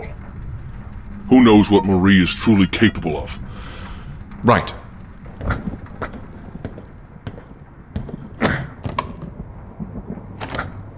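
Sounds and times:
low steady rumble: 0.0 - 10.9
speech: 1.3 - 3.7, 4.4 - 4.8
door creaking open: 3.5 - 9.4, 10.4 - 10.9.

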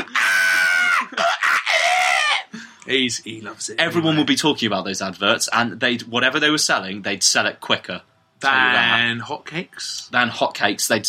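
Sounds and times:
voice imitating shrieking monkey screeches: 0.0 - 2.6
speech: 2.9 - 11.0.

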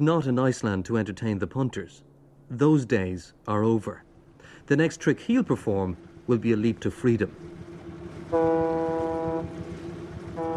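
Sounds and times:
speech: 0.0 - 4.1, 4.7 - 7.6, 8.3 - 9.6
boat's deep engine chugging leaving a harbour in Iceland: 3.0 - 10.5
loud ship's horn blasts: 7.3 - 10.5.

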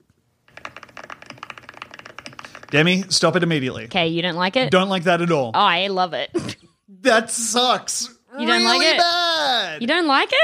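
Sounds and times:
computer keyboard typing: 0.5 - 2.9
speech: 2.7 - 10.4.

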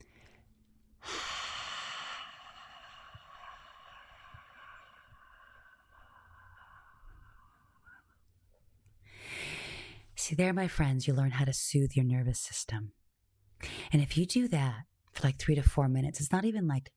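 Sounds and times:
deep inhale: 0.0 - 8.2, 9.0 - 10.0
airy breath hiss: 1.0 - 8.1
speech: 10.3 - 13.0, 13.9 - 16.9.

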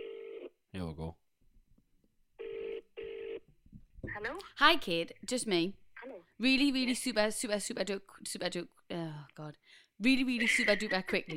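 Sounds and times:
electronic ringback tone of a phone call: 2.4 - 3.4
speech: 4.2 - 5.8, 6.4 - 11.3.

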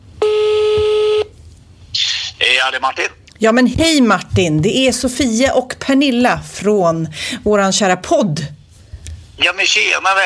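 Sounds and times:
telephone ringing tone while placing a phone call: 0.2 - 1.3
speech: 2.6 - 8.6, 9.4 - 10.2.

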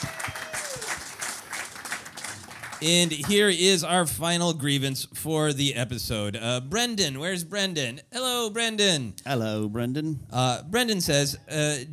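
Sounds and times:
group applauding at a quiz: 0.0 - 3.6
speech: 2.8 - 11.9.

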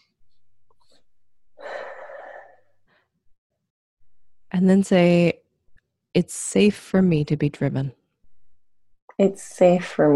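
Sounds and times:
deep breath taken during a guided affirmation exercise: 1.6 - 3.2
speech: 4.5 - 5.4, 6.1 - 8.0, 9.2 - 10.1.

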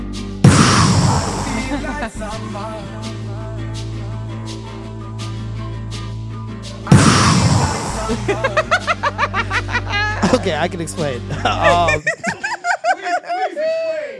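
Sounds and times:
gunshot-like blasts played as sound effects from a sound pad: 0.4 - 2.0, 6.9 - 8.5
pulsing pops: 0.5 - 1.8, 6.9 - 8.4
laughter: 1.5 - 2.7, 7.9 - 14.1
speech: 1.8 - 3.2, 8.1 - 9.7, 10.4 - 12.3.

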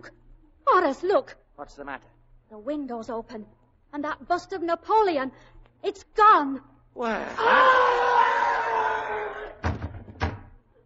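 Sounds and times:
speech: 0.0 - 8.2
person crying out: 7.1 - 9.2.

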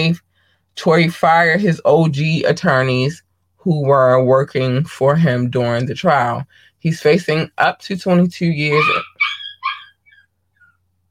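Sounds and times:
speech: 0.0 - 0.2, 0.8 - 9.1
dog yelping: 8.7 - 10.8.

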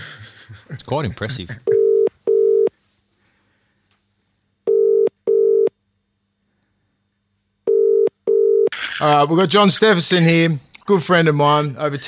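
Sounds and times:
speech: 0.9 - 1.8, 9.0 - 12.0
outgoing phone call ringback tone of double buzzy pulses: 1.7 - 2.7, 4.7 - 5.7, 7.7 - 8.7.

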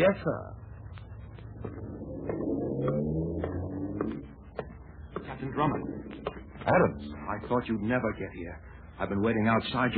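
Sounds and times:
speech: 0.0 - 0.6, 1.6 - 2.4, 5.4 - 9.9
car engine driving away: 1.4 - 7.5.

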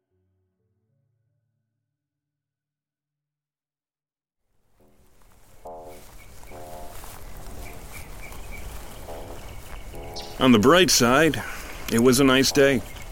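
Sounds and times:
birds chirping outdoors on a sunny day: 4.8 - 13.1
steady breezy ambience: 4.8 - 13.1
speech: 10.4 - 12.9.

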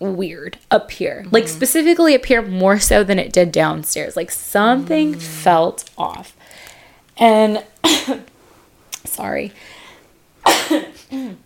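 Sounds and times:
speech: 0.0 - 6.4, 7.2 - 8.3, 9.1 - 9.7
harsh throaty coughs: 7.8 - 8.3, 10.4 - 11.4.

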